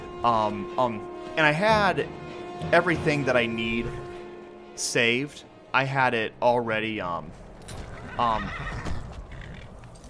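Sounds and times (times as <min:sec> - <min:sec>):
speech: 0:00.2 - 0:04.1, 0:04.8 - 0:08.9
horse hooves clopping: 0:07.4 - 0:10.0
horse whinnying: 0:07.8 - 0:09.7.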